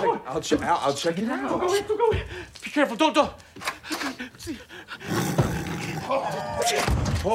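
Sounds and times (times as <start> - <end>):
speech: 0.3 - 7.3
tiger roaring and growling in a bathroom: 5.0 - 6.6.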